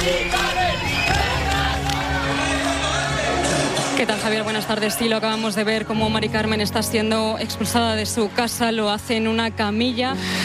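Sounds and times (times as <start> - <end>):
large outdoor crowd roar of overlapping voices in Ceuta: 0.0 - 5.5
speech: 0.1 - 0.4, 4.0 - 10.4.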